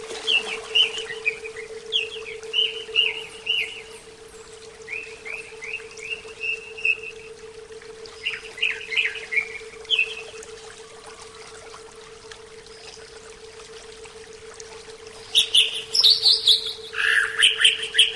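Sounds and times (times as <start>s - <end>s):
steady low hum: 0.0s - 18.1s
Oriental magpie-robin singing a soft rambling series of whistled notes: 0.3s - 4.0s, 4.9s - 7.3s, 8.1s - 10.4s, 15.2s - 18.1s.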